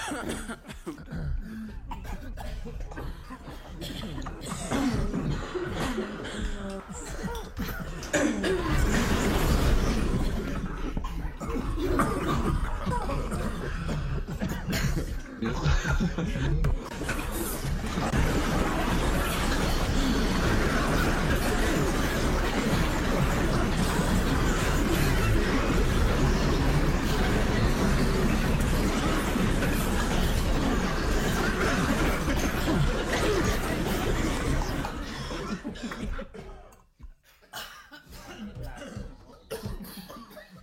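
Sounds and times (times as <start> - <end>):
chuckles: 0.0 - 40.6
several people coughing, including a small child: 0.0 - 40.6
throat clearing: 0.0 - 40.6.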